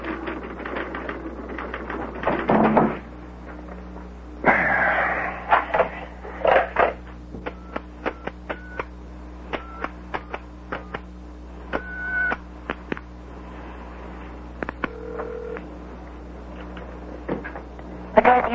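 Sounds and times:
steady low hum: 0.0s - 18.5s
touch-tone beeps of a telephone number being dialed: 7.5s - 8.9s, 11.8s - 12.4s.

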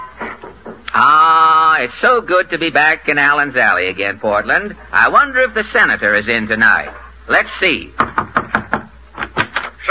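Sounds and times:
speech: 1.8s - 8.1s
knocking on a door: 8.0s - 9.6s.

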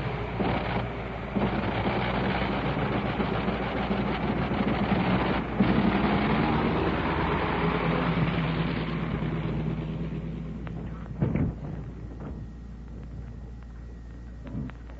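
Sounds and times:
big Liberty piston aircraft engine roaring as a plane taxis: 0.0s - 14.9s
short clunks: 10.7s - 14.9s.

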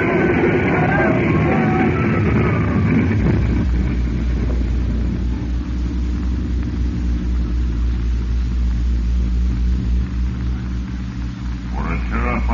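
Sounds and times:
aircraft crashing into a hangar: 0.0s - 7.4s
heavy low aircraft engine rumble: 0.0s - 12.5s.

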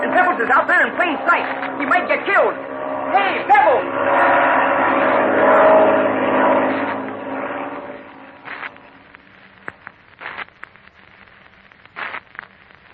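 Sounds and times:
loud broad engine roar from an airplane passing overhead: 0.0s - 9.2s
speech: 0.2s - 5.9s.

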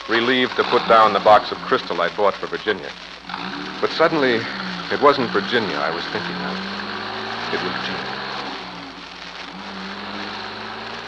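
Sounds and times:
car engine droning low: 0.0s - 11.0s
steady rain hissing across a surface: 0.0s - 11.0s
speech: 0.1s - 6.9s, 7.5s - 8.2s.

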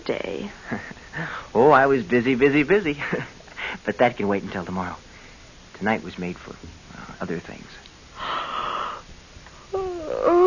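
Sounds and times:
speech: 0.0s - 5.1s, 5.8s - 8.4s
woman yawning aloud: 9.7s - 10.4s.

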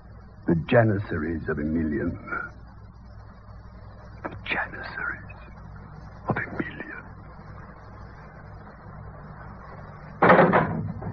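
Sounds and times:
speech: 0.5s - 2.5s
knock-like door rattle: 10.2s - 11.1s.

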